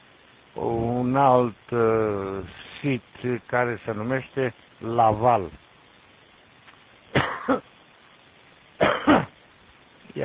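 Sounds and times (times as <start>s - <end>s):
speech: 0.6s - 5.6s, 7.5s - 7.7s
short harsh coughs: 7.1s - 7.7s, 8.8s - 9.4s.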